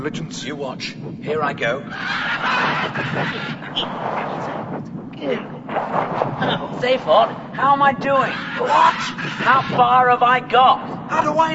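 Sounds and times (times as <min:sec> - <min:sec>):
speech: 0:00.0 - 0:11.5
huge bird honking and squawking harshly: 0:01.8 - 0:11.0
dense noisy rush of sound: 0:01.8 - 0:11.5.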